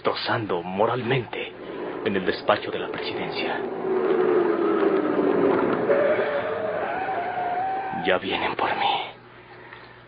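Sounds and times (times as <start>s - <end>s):
speech: 0.0s - 1.4s, 2.0s - 4.0s, 8.0s - 9.1s
car engine rumbling as the car pulls up and stops outside: 0.9s - 8.0s.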